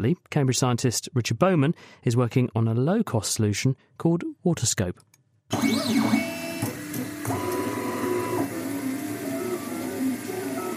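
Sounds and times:
speech: 0.0 - 6.3
3D printer printing handheld plastic microscopes: 5.6 - 10.7.

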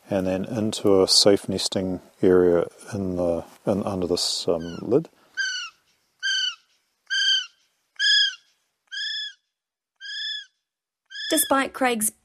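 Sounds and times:
speech: 0.1 - 5.2, 11.3 - 12.2
recorded kiwi call played in a Northland forest at night: 4.6 - 9.4, 10.0 - 11.6.

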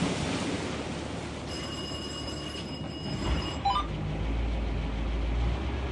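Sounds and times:
hissing water noise: 0.0 - 5.9
hissing wind: 0.0 - 5.9
fishing boat Caterpillar V8 diesel engine cranking and starting: 3.2 - 5.9.

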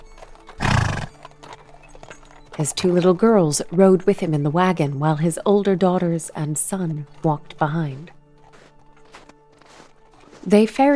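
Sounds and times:
horse whinnying: 0.5 - 1.6
speech: 2.6 - 8.2, 10.4 - 10.9.

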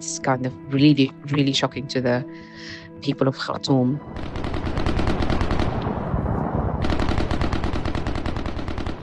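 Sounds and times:
speech: 0.0 - 4.4
heavy machine gun fire in rapid bursts: 4.2 - 9.0.

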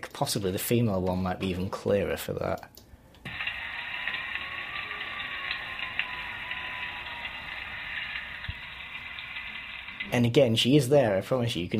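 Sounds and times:
speech: 0.2 - 2.8, 10.1 - 11.7
continuous rain falling: 3.3 - 10.2.

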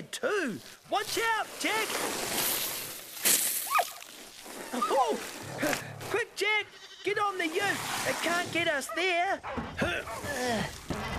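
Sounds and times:
speech: 0.1 - 2.7, 4.7 - 10.9
water spraying from a thrashing garden hose: 0.4 - 5.5, 7.3 - 8.8.

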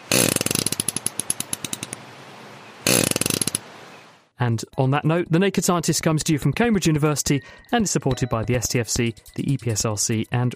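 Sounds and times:
fish farting with rapid buzzy ticks: 0.0 - 1.9, 2.8 - 3.7
speech: 4.4 - 10.5.

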